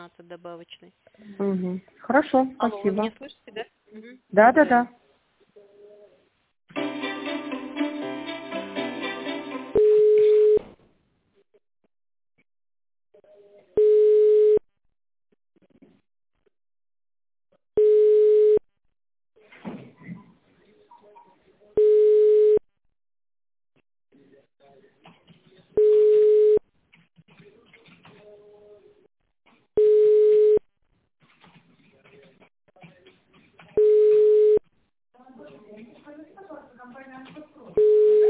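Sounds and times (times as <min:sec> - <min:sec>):
speech: 0:00.1 - 0:05.0
telephone ringing tone while a call is being connected: 0:09.7 - 0:10.6, 0:13.8 - 0:14.6, 0:17.8 - 0:18.6, 0:21.8 - 0:22.6, 0:25.8 - 0:26.6, 0:29.8 - 0:30.6, 0:33.8 - 0:34.6, 0:37.8 - 0:38.2.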